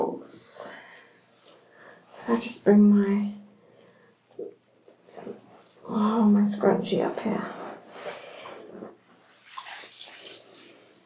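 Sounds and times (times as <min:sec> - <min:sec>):
speech: 0:02.3 - 0:03.4, 0:05.2 - 0:07.6
water trickling and splashing in droplets from a held container in a bath: 0:09.4 - 0:11.0.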